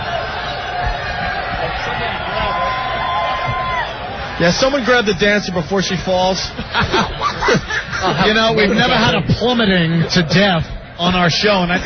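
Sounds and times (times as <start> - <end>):
crowd yelling and cheering: 0.0 - 11.8
speech: 4.4 - 11.8
laughter: 5.8 - 10.7.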